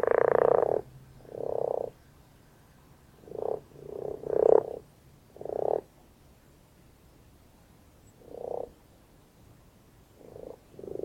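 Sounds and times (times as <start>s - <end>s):
common frog grunting purr-like croaking: 0.0s - 2.0s, 3.2s - 5.9s, 8.2s - 8.8s, 10.2s - 11.0s.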